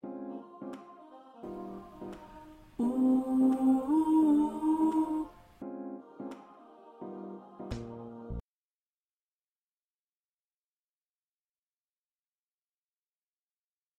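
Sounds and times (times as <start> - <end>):
backing vocals: 0.4 - 8.4.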